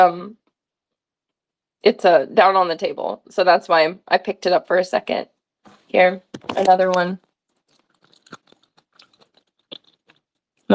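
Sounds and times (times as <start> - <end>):
speech: 0.0 - 0.4, 1.8 - 7.2
crunchy food being chewed: 7.5 - 10.7.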